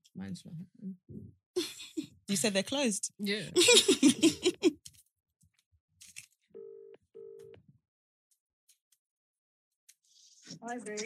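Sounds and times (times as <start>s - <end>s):
speech: 0.2s - 1.7s, 2.3s - 4.8s, 10.6s - 11.0s
laughter: 3.5s - 4.8s
double ringing tones: 6.6s - 7.6s.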